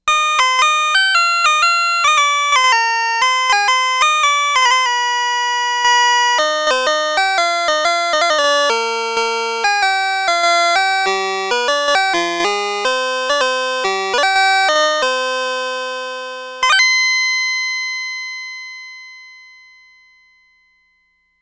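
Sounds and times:
synthesizer harpsichord preset: 0:00.1 - 0:17.1.

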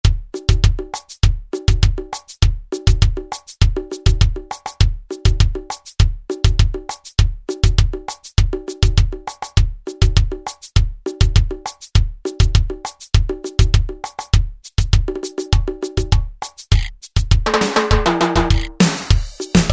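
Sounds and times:
Alesis SR-16 drum machine Latin preset pattern: 0:00.0 - 0:19.7.

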